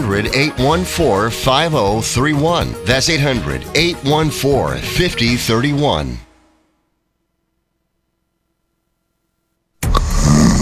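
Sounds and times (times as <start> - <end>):
speech: 0.0 - 6.2
person snoring with a rough throaty rumble: 9.9 - 10.6.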